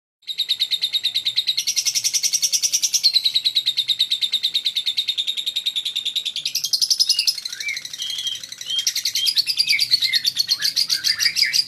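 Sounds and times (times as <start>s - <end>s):
lovebird giving shrill squeaky chirps: 0.2s - 11.6s.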